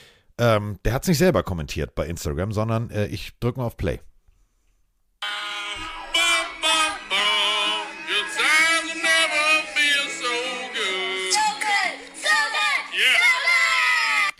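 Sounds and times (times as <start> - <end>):
speech: 0.4 - 4.1
children on the back of a golf cart singing a football fight song: 5.2 - 14.3.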